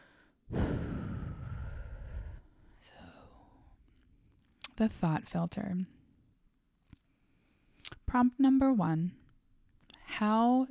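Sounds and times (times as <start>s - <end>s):
deep breath: 0.0s - 3.7s
speech: 4.8s - 6.0s, 8.1s - 9.2s, 10.2s - 10.7s.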